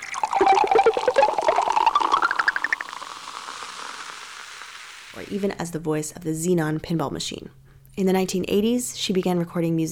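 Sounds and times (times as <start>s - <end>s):
cola poured from a bottle, fizzing: 0.0s - 5.4s
speech: 5.3s - 9.9s.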